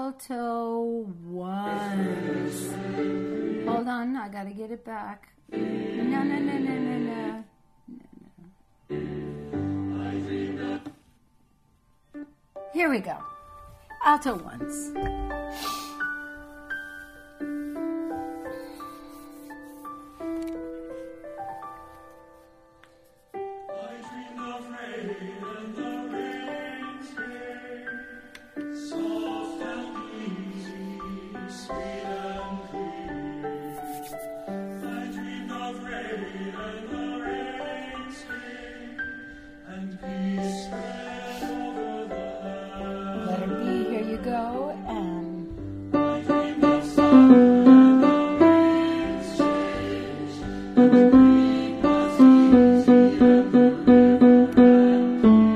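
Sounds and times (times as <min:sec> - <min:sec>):
alto voice singing: 0:01.6 - 0:04.2, 0:05.4 - 0:11.0, 0:23.6 - 0:33.7, 0:34.6 - 0:55.5.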